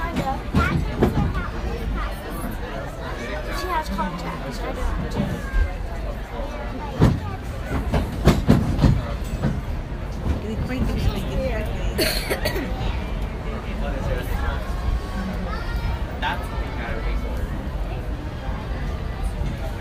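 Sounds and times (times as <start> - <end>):
rhythmic train clacks and clunks: 0.0 - 1.5, 6.9 - 12.4
passenger train rolling along tracks: 0.0 - 2.9, 4.6 - 19.7
people talking faintly: 0.0 - 19.7.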